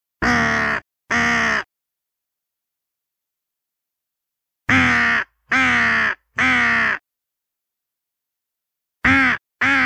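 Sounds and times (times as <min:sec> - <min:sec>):
crows: 0:00.2 - 0:01.7, 0:04.7 - 0:07.1, 0:09.0 - 0:09.8.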